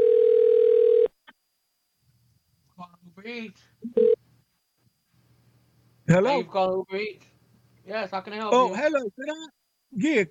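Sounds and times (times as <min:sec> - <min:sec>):
telephone dial tone: 0:00.0 - 0:01.1, 0:04.0 - 0:04.2
speech: 0:03.2 - 0:04.1, 0:06.1 - 0:07.3, 0:07.9 - 0:10.2.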